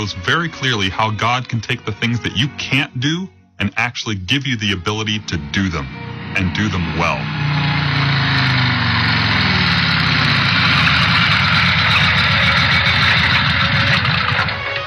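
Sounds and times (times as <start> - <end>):
speech: 0.0 - 7.6
motorcycle engine idling: 7.4 - 14.7.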